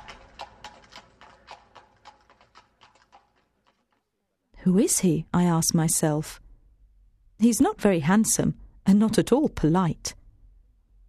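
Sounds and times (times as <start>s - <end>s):
horse hooves clip-clopping: 0.0s - 4.1s
speech: 4.6s - 6.4s, 7.4s - 10.2s.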